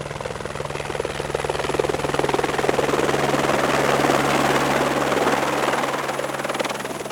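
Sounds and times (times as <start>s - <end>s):
helicopter flying with rotor blades thudding and engine whining: 0.0s - 7.1s.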